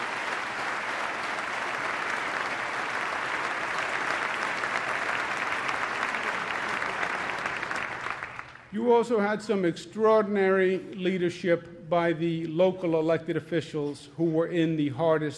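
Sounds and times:
large audience applauding: 0.0 - 8.7
speech: 8.7 - 15.3.

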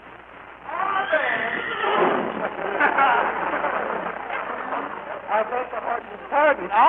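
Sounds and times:
horse whinnying: 0.8 - 2.4
laughter: 2.0 - 6.7.

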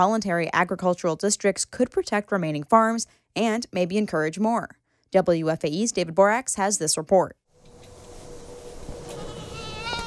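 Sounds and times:
speech: 0.0 - 7.4
farm animal bleating on a small farm: 9.1 - 10.0.

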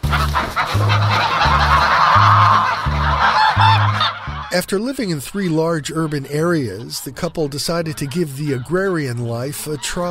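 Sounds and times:
flock of farm geese honking: 0.0 - 10.1
laughter: 0.0 - 10.1
speech: 4.6 - 10.1.

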